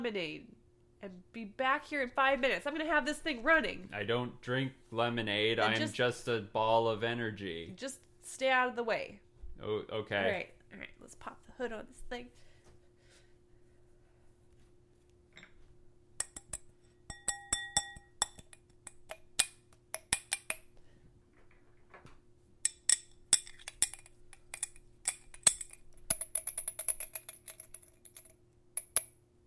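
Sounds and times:
speech: 0:00.0 - 0:12.4
faint steady hum: 0:00.0 - 0:29.4
wine glass rattling and clinking: 0:16.2 - 0:18.7, 0:22.7 - 0:29.1.

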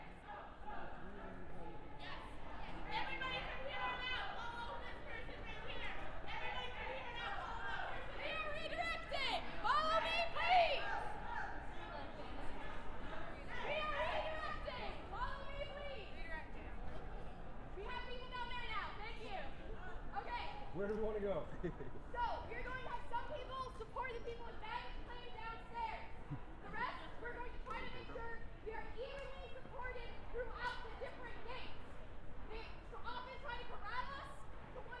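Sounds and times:
crowd murmuring at an airport protest: 0:00.0 - 0:34.9.

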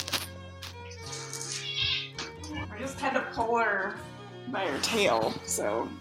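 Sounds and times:
cat meowing: 0:01.4 - 0:02.3
speech: 0:02.7 - 0:05.9.

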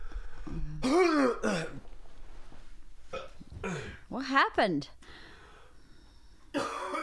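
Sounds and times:
person clearing throat with an anchovy bone stuck in it: 0:00.5 - 0:01.8, 0:03.1 - 0:04.0, 0:06.6 - 0:07.0
person coughing with an anchovy bone stuck in the throat: 0:00.7 - 0:01.8, 0:03.1 - 0:04.0, 0:06.5 - 0:07.0
speech: 0:04.2 - 0:05.0.

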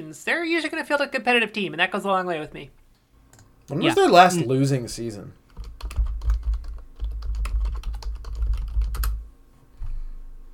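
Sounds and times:
speech: 0:00.0 - 0:02.8, 0:03.7 - 0:05.4
mechanical keyboard typing: 0:05.5 - 0:09.2.

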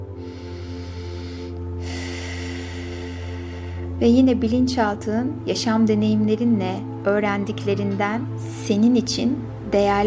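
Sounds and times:
deep breathing during a guided relaxation exercise: 0:00.0 - 0:04.0
speech: 0:04.0 - 0:10.0.

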